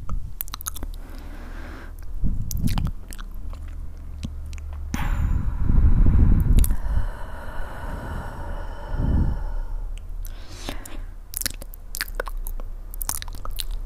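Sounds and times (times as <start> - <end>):
wet mouth clicks and smacks: 0.0 - 1.2, 1.9 - 4.8, 10.0 - 13.8
chewing and crunching: 0.0 - 1.3, 1.9 - 4.8, 11.3 - 13.8
low steady hum: 0.0 - 13.8.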